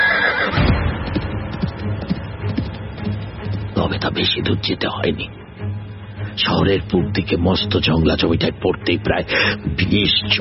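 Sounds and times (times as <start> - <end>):
horse whinnying as a lone rider sets off: 0.0 - 0.7
horse hooves clopping as a lone rider sets off: 0.0 - 4.1
speech: 4.0 - 5.4, 6.4 - 10.3.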